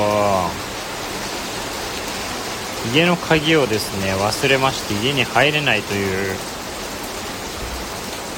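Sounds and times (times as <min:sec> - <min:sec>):
heavy rain pouring down steadily: 0:00.0 - 0:08.3
speech: 0:02.8 - 0:06.6.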